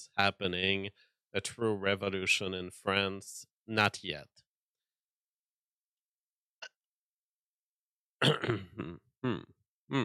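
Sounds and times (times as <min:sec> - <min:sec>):
speech: 0:00.2 - 0:04.4, 0:08.2 - 0:10.0
person clearing throat or coughing: 0:08.2 - 0:10.0.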